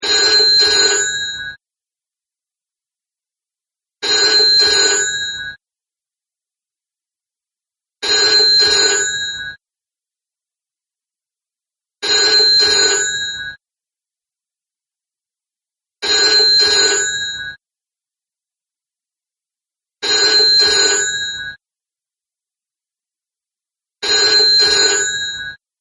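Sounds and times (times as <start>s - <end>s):
double ringtone: 0.0s - 1.6s, 4.0s - 5.6s, 8.0s - 9.6s, 12.0s - 13.6s, 16.0s - 17.6s, 20.0s - 21.6s, 24.0s - 25.6s.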